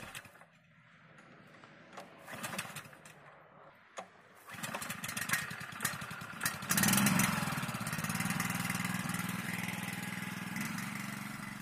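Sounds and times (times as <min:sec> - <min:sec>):
small bore well water pump engine running: 0:04.5 - 0:11.5.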